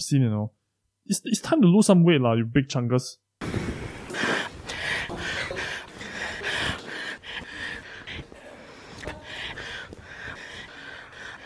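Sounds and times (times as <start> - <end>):
speech: 0.0 - 3.6
woman breathing heavily and panting into a microphone: 3.5 - 11.4.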